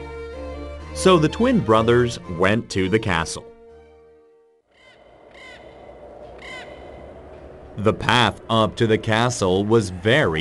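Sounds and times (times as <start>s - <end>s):
tonal musical intro: 0.0s - 4.6s
speech: 1.0s - 3.5s, 7.8s - 10.3s
steady outdoor noise: 3.7s - 10.3s
large crows cawing while flying overhead: 4.7s - 7.2s.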